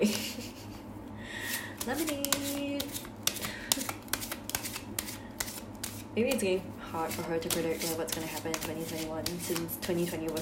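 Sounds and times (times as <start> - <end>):
speech: 0.0 - 0.3, 1.8 - 2.7, 6.2 - 10.4
shuffling a deck of cards: 1.8 - 6.1, 7.1 - 10.4.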